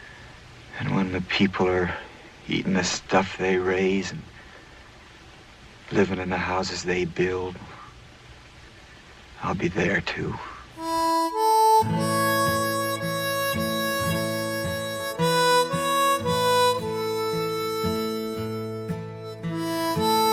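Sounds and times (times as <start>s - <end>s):
speech: 0.8s - 4.3s, 5.9s - 7.8s, 9.4s - 10.5s, 11.8s - 12.1s
slow traditional folk song on reedy instruments as film background music: 10.8s - 20.3s.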